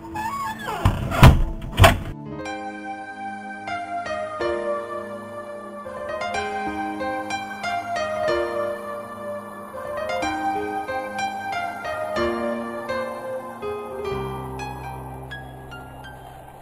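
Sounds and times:
soft sustained music with no voices: 0.0 - 16.6
door slamming shut: 0.5 - 2.2.

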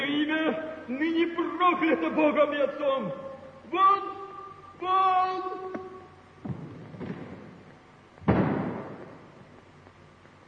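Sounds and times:
speech: 1.3 - 4.2, 4.8 - 5.8
heavy bronze door slamming shut with echo: 8.2 - 9.2.

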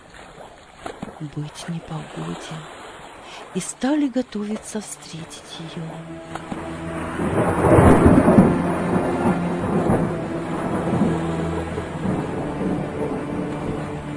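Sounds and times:
steady rain in heavy thunderstorm: 0.0 - 14.1
speech: 1.2 - 7.8
deep rumble of thunder in heavy thunderstorm: 5.9 - 14.1.

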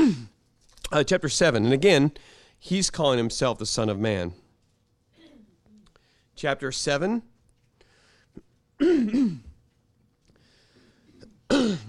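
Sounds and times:
person clearing throat: 0.0 - 0.4, 5.2 - 5.6, 8.4 - 9.6, 11.1 - 11.8
speech: 0.9 - 4.4, 6.4 - 7.3, 8.8 - 9.5.

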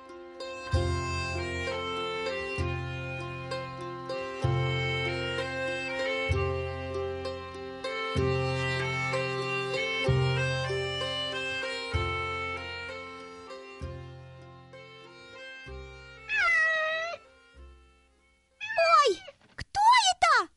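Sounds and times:
sustained musical chord: 0.0 - 16.3
kitten meowing: 16.3 - 17.2, 18.6 - 19.4.

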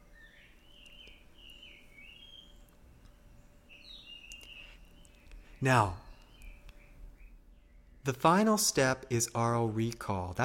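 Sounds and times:
jungle bird calling outdoors with whistling chirps and trills: 0.0 - 8.3
steady low hum: 0.0 - 10.4
speech: 5.6 - 6.0, 8.0 - 10.4.

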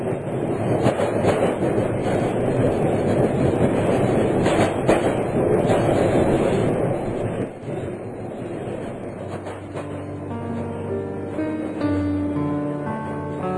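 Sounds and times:
diesel locomotive train pulling away: 0.0 - 13.5
train wheel clacks: 0.7 - 7.3, 8.8 - 10.1.

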